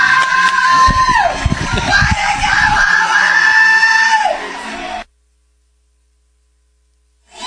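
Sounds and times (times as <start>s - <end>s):
people in a press box screaming excitedly after a three-run home run: 0.0s - 5.0s.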